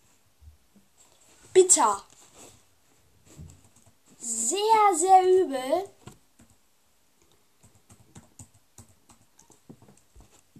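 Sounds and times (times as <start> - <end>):
speech: 1.6 - 2.1, 4.2 - 6.0
typing a chat message on a computer keyboard: 6.1 - 6.6, 7.2 - 10.0.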